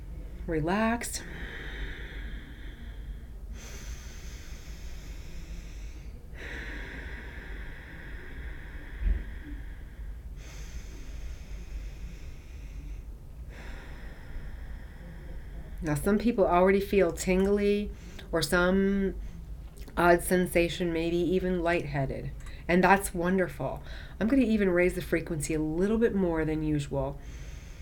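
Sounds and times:
slow deep breathing: 0:00.0 - 0:18.4, 0:23.8 - 0:24.2, 0:27.1 - 0:27.7
constant low hum: 0:00.0 - 0:27.7
speech: 0:00.5 - 0:01.4, 0:15.9 - 0:19.3, 0:20.0 - 0:27.4.

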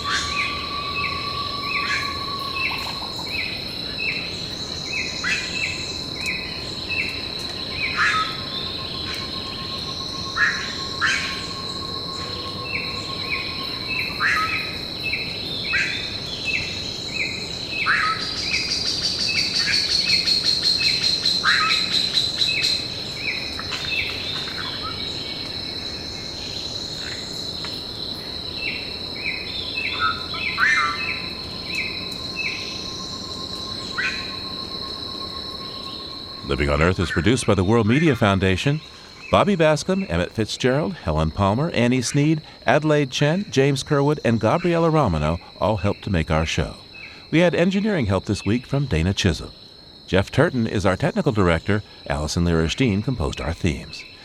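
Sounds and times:
tropical forest bird calls and whistles: 0:00.0 - 0:25.3, 0:29.4 - 0:37.3
pulsing cricket-like trills in a tropical forest: 0:00.0 - 0:54.2
steady high insect drones in a tropical forest at the falls on the Brazil-Argentina border: 0:00.0 - 0:54.2
speech: 0:36.8 - 0:54.1.

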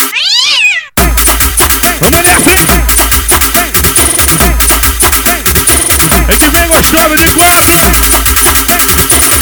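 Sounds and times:
cat meowing: 0:00.1 - 0:01.0
rhythmic dense music beat: 0:01.0 - 0:09.3
speech: 0:02.0 - 0:03.1, 0:06.9 - 0:08.1.

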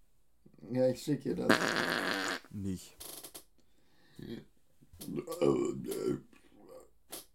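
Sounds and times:
speech: 0:00.7 - 0:03.2, 0:04.2 - 0:06.3
loud drawn-out burp after eating Indian food: 0:01.5 - 0:02.5, 0:05.0 - 0:06.9.

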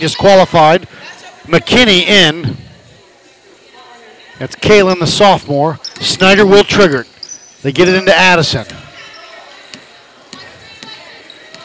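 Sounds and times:
speech: 0:00.0 - 0:02.6, 0:04.4 - 0:08.8
crowd noise: 0:00.0 - 0:11.6
basketball dribbled on a court during a women's basketball game: 0:08.6 - 0:08.9, 0:09.7 - 0:11.6.

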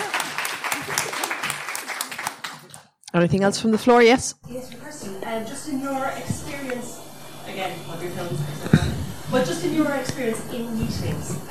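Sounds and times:
crowd applauding: 0:00.0 - 0:02.8
speech: 0:03.1 - 0:11.4.

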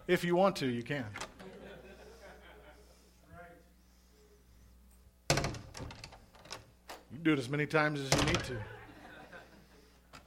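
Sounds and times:
room noise: 0:00.0 - 0:10.2
speech: 0:00.1 - 0:01.2, 0:07.2 - 0:08.8
laughter: 0:01.4 - 0:03.2, 0:08.5 - 0:10.0
door slamming shut: 0:05.3 - 0:06.2, 0:08.1 - 0:08.6.

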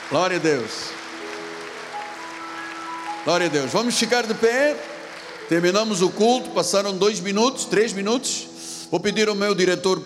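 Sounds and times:
audience applauding at a church worship service: 0:00.0 - 0:06.9
speech: 0:00.1 - 0:01.0, 0:03.2 - 0:04.9, 0:05.5 - 0:10.0.

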